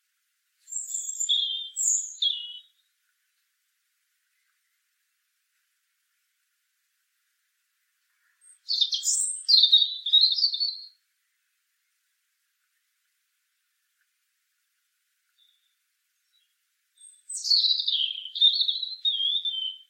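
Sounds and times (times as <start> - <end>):
European robin Erithacus rubecula twittering and warbling: 0.6 - 2.8, 8.2 - 11.0, 15.4 - 19.8.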